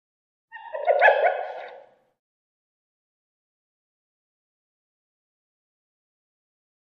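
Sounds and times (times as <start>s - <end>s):
hyenas of unknown type: 0.5s - 1.9s.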